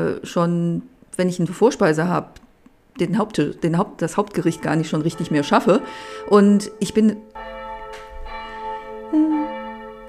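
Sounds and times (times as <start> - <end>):
speech: 0.0 - 2.4, 3.0 - 7.6
church bells ringing: 4.2 - 10.0.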